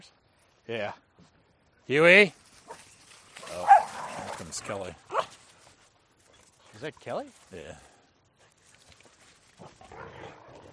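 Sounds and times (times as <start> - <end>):
speech: 0.0 - 1.3, 1.9 - 2.4, 4.4 - 5.2, 6.8 - 7.9
dog barking and yelping: 3.5 - 4.4.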